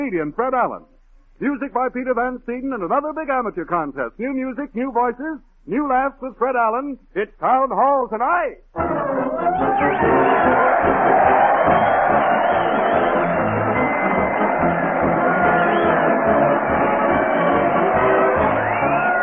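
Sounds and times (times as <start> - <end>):
speech: 0.0 - 9.9
crowd whoops: 8.8 - 19.2
large crowd cheering and shouting at a parade: 8.8 - 19.2.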